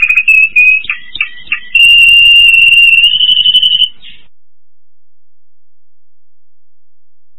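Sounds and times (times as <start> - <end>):
Spanish Timbrado canary singing: 0.0 - 4.3.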